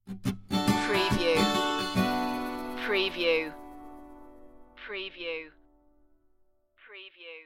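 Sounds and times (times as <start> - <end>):
music stinger: 0.5 - 4.8.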